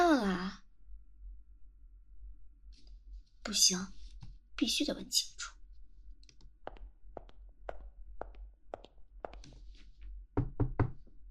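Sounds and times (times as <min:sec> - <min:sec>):
speech: 0:03.4 - 0:04.0, 0:04.6 - 0:05.6
knocking on a door: 0:10.4 - 0:11.1.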